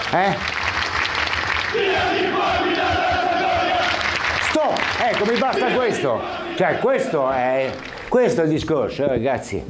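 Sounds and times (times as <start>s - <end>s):
speech: 0.1s - 0.5s, 1.7s - 3.0s, 4.6s - 9.6s
large crowd of football fans roaring in protest: 1.1s - 8.2s
general din of the stands: 1.4s - 9.6s.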